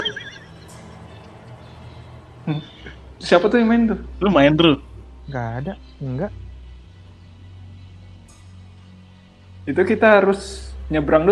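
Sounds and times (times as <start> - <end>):
mobile phone game warbling electronic sound effect: 0.0 - 1.2
speech: 2.5 - 6.4, 9.6 - 11.3.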